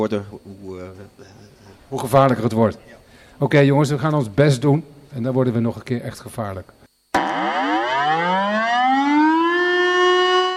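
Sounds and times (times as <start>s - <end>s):
speech: 0.0s - 7.3s
civil defense warning siren winding up and wailing: 7.2s - 10.5s.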